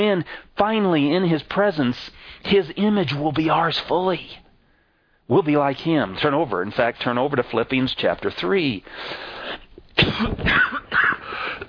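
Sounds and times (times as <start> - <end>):
speech: 0.0 - 4.4, 5.3 - 11.6
harsh coughing: 10.0 - 11.6.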